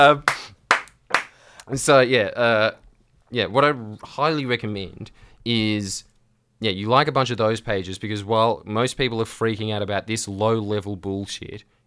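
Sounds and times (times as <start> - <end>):
speech: 0.0 - 0.3, 1.7 - 11.8
sharp hand claps: 0.0 - 1.4.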